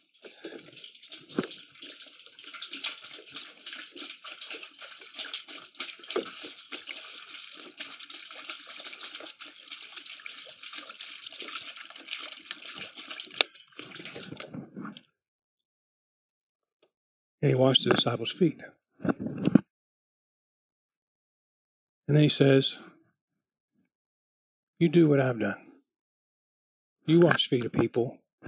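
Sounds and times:
water pouring into a basin: 0:00.0 - 0:15.0
speech: 0:17.4 - 0:18.8, 0:22.1 - 0:22.8, 0:24.8 - 0:25.6, 0:27.1 - 0:28.4.

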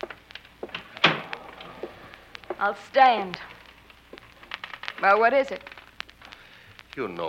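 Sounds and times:
door pushed shut with a solid thunk: 0:00.6 - 0:01.6
speech: 0:02.6 - 0:03.5, 0:05.0 - 0:05.7, 0:07.0 - 0:07.2.

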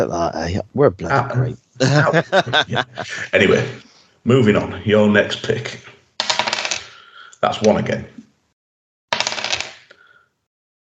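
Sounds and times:
speech: 0:00.0 - 0:05.9, 0:07.4 - 0:08.2
laughter: 0:01.8 - 0:03.8
dice clattering and tumbling across a hard surface: 0:06.2 - 0:07.0, 0:09.1 - 0:10.0.

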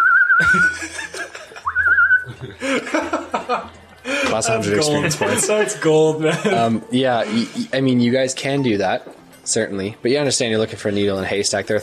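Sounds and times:
warbling whistled tones: 0:00.0 - 0:00.8, 0:01.6 - 0:02.4
speech: 0:00.4 - 0:01.2, 0:04.4 - 0:11.8
several people laughing and chuckling: 0:00.4 - 0:07.8.

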